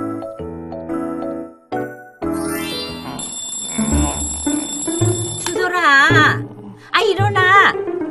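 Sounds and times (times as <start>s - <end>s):
bright electronic alarm clock melody ringing: 2.3s - 5.9s
speech: 7.0s - 7.9s.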